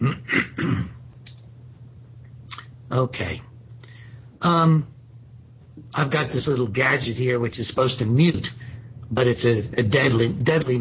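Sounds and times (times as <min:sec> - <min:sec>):
man clearing his throat during a spoken lecture: 0:00.0 - 0:01.0
speech: 0:02.9 - 0:03.5, 0:04.4 - 0:04.9, 0:05.9 - 0:10.8.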